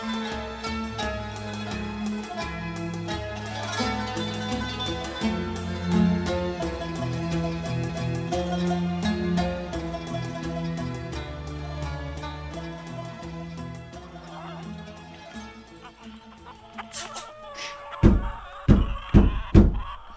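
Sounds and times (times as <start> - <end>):
laughter: 0.0 - 7.4, 12.9 - 20.1
soft instrumental music: 0.0 - 17.6
knocking on the wooden door of a house: 18.0 - 19.9.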